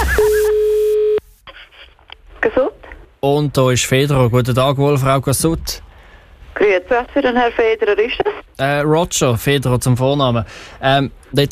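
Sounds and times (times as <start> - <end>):
telephone line tone as a radio call is placed: 0.0 - 1.2
speech: 2.4 - 5.9, 6.6 - 11.4.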